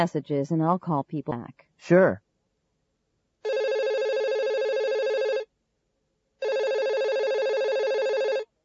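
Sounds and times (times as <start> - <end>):
speech: 0.0 - 2.2
electronic telephone ringing in a travel agency office: 3.5 - 5.5, 6.4 - 8.5.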